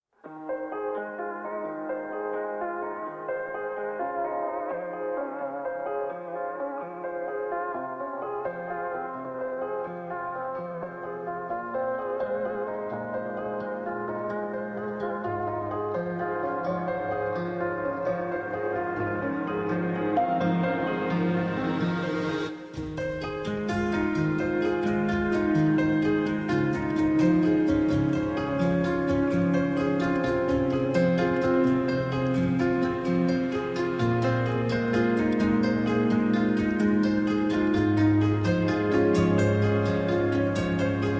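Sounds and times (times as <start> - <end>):
piano rework: 0.1 - 41.1.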